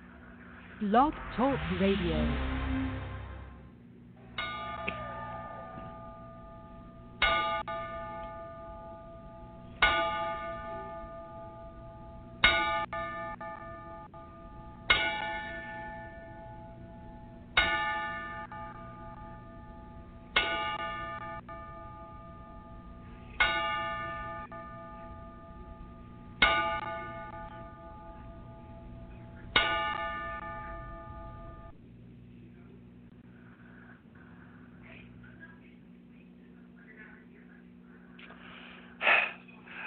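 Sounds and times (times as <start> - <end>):
speech: 0.8 - 2.5
ringside bell struck slowly and solemnly: 4.3 - 31.8.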